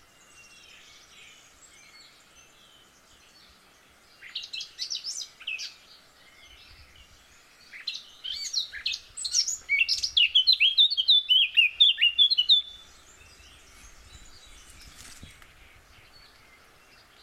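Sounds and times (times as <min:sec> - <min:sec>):
Eurasian blackcap singing, Sylvia atricapilla: 0:04.2 - 0:17.2.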